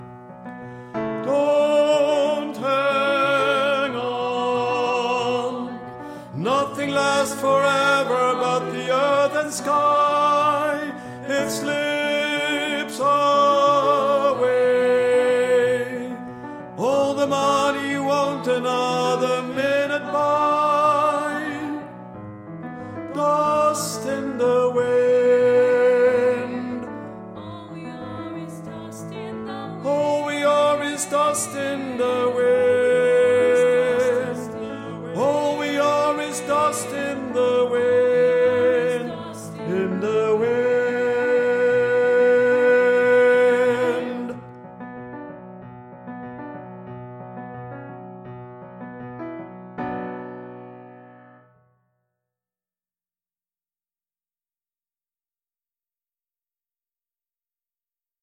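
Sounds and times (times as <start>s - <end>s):
tenor singing: 1.2s - 22.1s, 23.1s - 44.6s.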